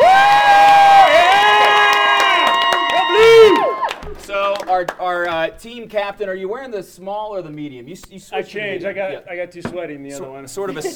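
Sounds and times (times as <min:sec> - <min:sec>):
audience cheering and whooping at a live team game event: 0:00.0 - 0:04.2
speech: 0:04.8 - 0:10.9.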